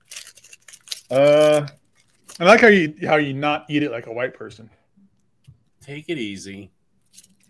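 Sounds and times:
foil wrapper on a burrito crinkling and rustling: 0:00.0 - 0:02.7
speech: 0:01.1 - 0:01.8, 0:02.4 - 0:04.8, 0:05.9 - 0:06.8.

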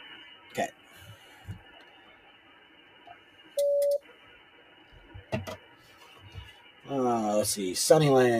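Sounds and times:
shortwave ham radio receiver tuned to 7.230 hissing with static: 0:00.0 - 0:08.3
speech: 0:00.5 - 0:00.8, 0:06.9 - 0:08.3.

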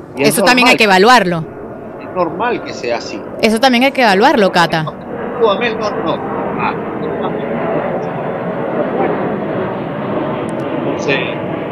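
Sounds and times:
airplane passing overhead: 0:00.0 - 0:11.7
speech: 0:00.2 - 0:01.5, 0:02.1 - 0:06.9, 0:11.0 - 0:11.4.

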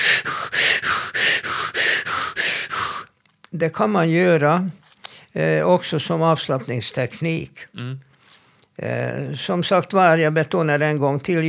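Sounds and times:
person hyperventilating with rapid forceful breaths: 0:00.0 - 0:03.2
speech: 0:03.6 - 0:08.1, 0:08.8 - 0:11.4.

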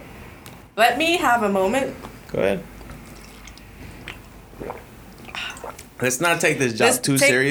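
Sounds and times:
low hum: 0:00.0 - 0:07.4
speech: 0:00.8 - 0:02.7, 0:06.0 - 0:07.4
person gulping water: 0:02.8 - 0:06.1
liquid squishes: 0:02.8 - 0:06.5.

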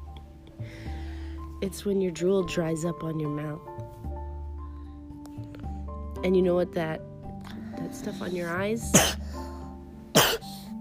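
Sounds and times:
speech: 0:01.6 - 0:03.9, 0:06.2 - 0:07.1, 0:07.8 - 0:09.4
person coughing: 0:08.9 - 0:09.4, 0:10.1 - 0:10.6.

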